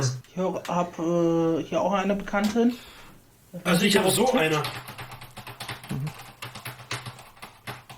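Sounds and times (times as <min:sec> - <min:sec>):
speech: 0:00.0 - 0:05.0
faint steady hum: 0:00.0 - 0:07.9
typing on a non-mechanical keyboard resting on a lap: 0:04.3 - 0:07.9.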